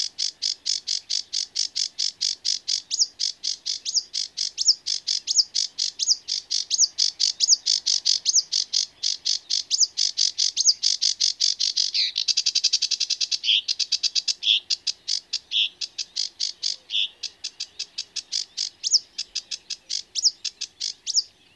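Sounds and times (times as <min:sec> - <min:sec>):
sedge warbler singing: 0:00.0 - 0:21.5.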